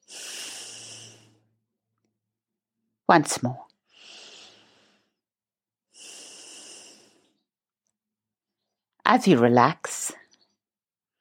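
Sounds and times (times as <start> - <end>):
deep breathing: 0.0 - 1.6, 3.9 - 5.3, 5.9 - 7.5
speech: 3.1 - 3.7, 9.1 - 9.9.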